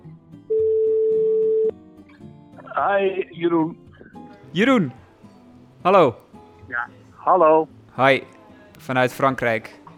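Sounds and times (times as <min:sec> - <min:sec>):
telephone ringback tone of a call placed to a reporter: 0:00.5 - 0:01.7
speech: 0:02.8 - 0:03.8, 0:04.5 - 0:05.0, 0:05.8 - 0:09.8.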